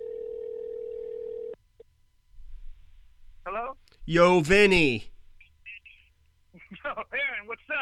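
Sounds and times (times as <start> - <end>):
outgoing phone call ringback tone: 0.0 - 1.6
speech: 3.5 - 5.1.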